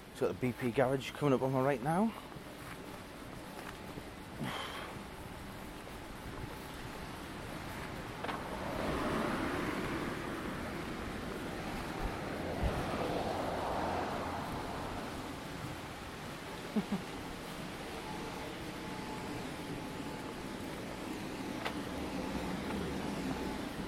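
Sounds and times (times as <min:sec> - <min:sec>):
speech: 0:00.2 - 0:02.4
car wash dryer blowing: 0:05.9 - 0:23.8.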